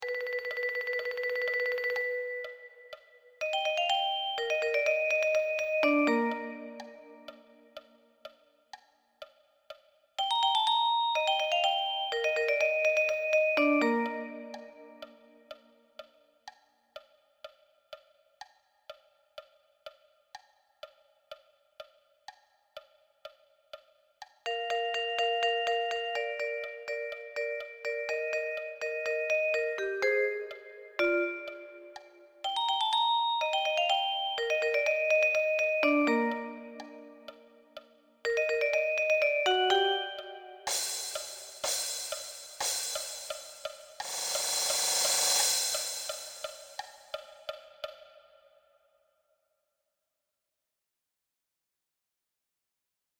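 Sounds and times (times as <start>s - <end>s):
vibraphone: 0.0s - 7.7s, 10.2s - 15.4s, 24.5s - 47.0s.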